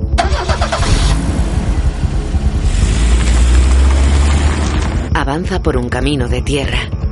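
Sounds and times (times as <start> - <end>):
Volvo car engine starting and idling: 0.1 - 5.2
speech: 5.4 - 7.0.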